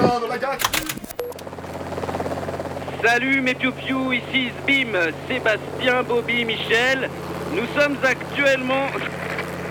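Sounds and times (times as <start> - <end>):
helicopter flying over a sailing race: 0.0 - 9.7
clatter: 0.4 - 2.0
speech: 3.0 - 9.2.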